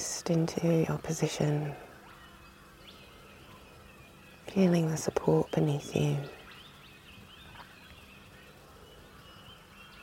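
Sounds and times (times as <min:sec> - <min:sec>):
birds chirping and trilling: 0:00.0 - 0:10.0
constant outdoor noise: 0:00.0 - 0:10.0
speech: 0:00.3 - 0:01.9, 0:04.5 - 0:06.4.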